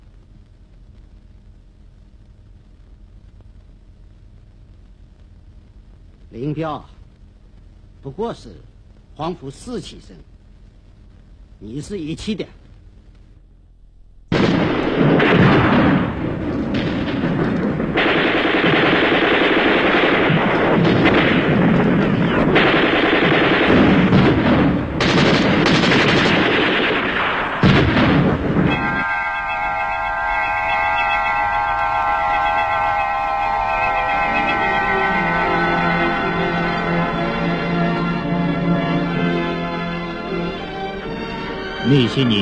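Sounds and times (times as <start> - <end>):
speech: 6.3 - 7.0, 8.0 - 10.3, 11.6 - 12.6
gunfire and artillery sound effects for a war-era scene: 14.3 - 42.3
sustained tonal music-like passage: 28.6 - 42.3.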